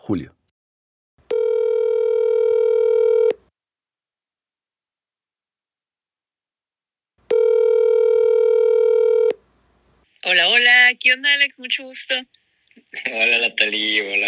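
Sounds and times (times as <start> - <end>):
speech: 0.1 - 0.4, 10.4 - 14.2
telephone line tone: 1.3 - 3.4, 7.3 - 9.4.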